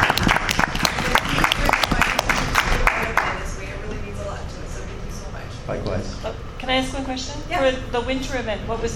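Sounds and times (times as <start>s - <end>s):
audience applause: 0.0s - 3.5s
faint murmur of voices: 0.5s - 8.9s
speech: 6.8s - 8.9s.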